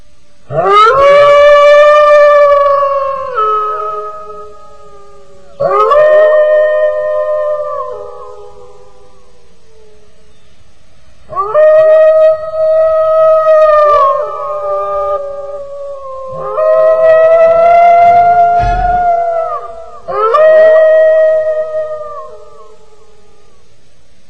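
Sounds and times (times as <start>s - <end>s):
dog howling wildly: 0.5s - 4.5s, 5.6s - 8.6s, 11.3s - 22.7s.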